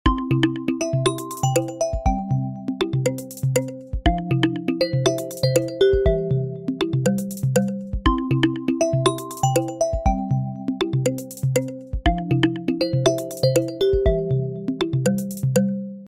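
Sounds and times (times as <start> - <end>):
remix bounce ringtone: 0.1 - 16.0.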